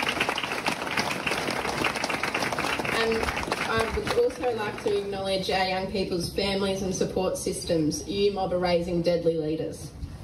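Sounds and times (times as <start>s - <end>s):
audience applause at a youth award ceremony: 0.0s - 5.0s
light crowd noise: 0.0s - 7.6s
speech: 3.0s - 10.0s.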